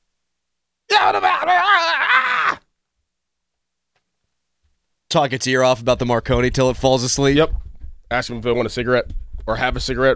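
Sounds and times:
man screaming: 0.9s - 2.7s
speech: 5.1s - 10.1s.

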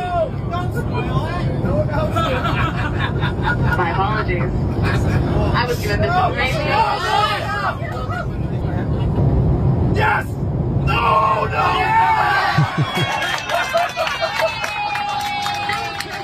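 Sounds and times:
steady low airplane cabin rumble: 0.0s - 16.2s
laughter: 2.0s - 3.9s, 12.4s - 14.8s
speech: 4.3s - 8.0s, 11.0s - 13.2s
airplane passengers cheering and yelling on a flight about to land: 10.9s - 16.2s.

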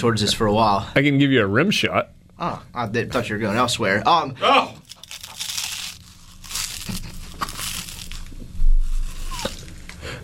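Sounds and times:
speech: 0.0s - 4.8s
person crunching a bite of food: 4.8s - 10.0s.

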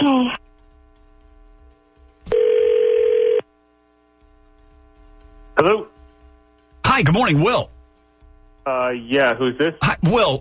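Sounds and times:
faint hum: 0.0s - 10.3s
electronic telephone ringback tone on the caller's end: 2.3s - 3.5s
speech: 5.6s - 5.9s, 7.0s - 7.8s, 8.7s - 10.3s.

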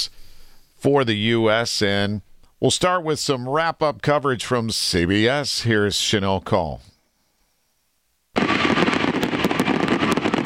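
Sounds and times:
speech: 0.8s - 6.9s
fireworks over the national stadium in Paris at the 2024 Olympics closing ceremony: 8.4s - 10.4s.

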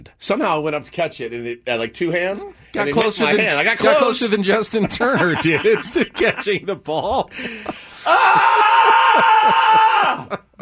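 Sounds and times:
speech: 0.0s - 8.6s, 9.2s - 10.6s
laughter: 4.3s - 10.6s
strained raspy guttural scream: 8.0s - 10.4s.

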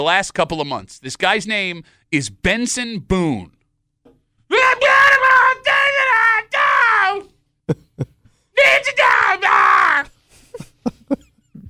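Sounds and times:
speech: 0.0s - 3.6s, 7.1s - 7.8s, 8.6s - 9.7s
man screaming high-pitched wails into a microphone imitating a singer: 4.5s - 7.3s, 8.6s - 10.1s.

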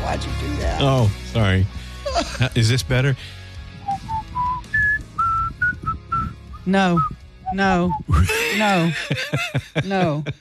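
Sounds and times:
speech: 0.1s - 3.4s, 6.7s - 10.3s
person whistling a short melodic tune: 3.8s - 8.4s
laughter: 8.1s - 10.3s.

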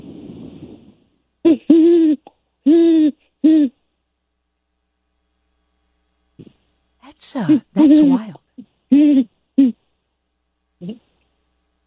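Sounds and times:
person imitating owl hoots: 1.5s - 3.8s, 7.2s - 9.8s
speech: 7.3s - 9.3s.

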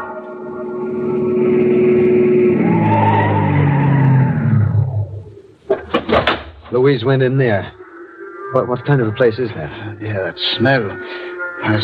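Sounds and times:
car engine roaring and accelerating away: 0.2s - 5.7s
car tires squealing in a skid: 1.0s - 5.0s
speech: 6.9s - 7.8s, 8.5s - 11.8s.

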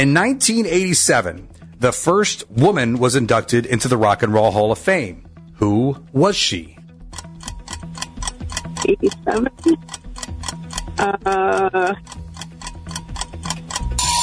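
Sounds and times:
speech: 0.0s - 6.8s, 8.8s - 10.0s, 11.0s - 12.2s
quiz timer ticking: 6.8s - 14.2s.

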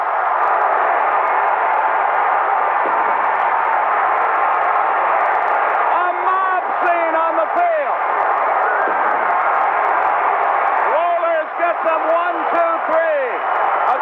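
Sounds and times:
huge stadium crowd cheering a championship win: 0.0s - 14.0s.

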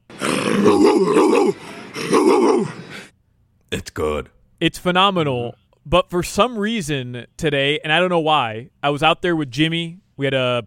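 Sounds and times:
woman imitating a dog growling and barking: 0.1s - 3.1s
speech: 0.6s - 2.8s, 3.7s - 10.6s.

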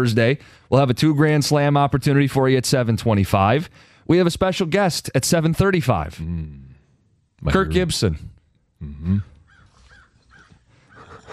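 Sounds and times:
speech: 0.0s - 6.7s, 7.4s - 9.3s
crow cawing: 9.4s - 11.3s.

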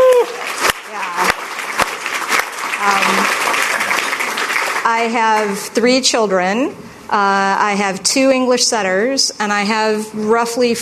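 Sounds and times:
crowd applauding: 0.0s - 5.6s
speech: 4.9s - 10.8s.

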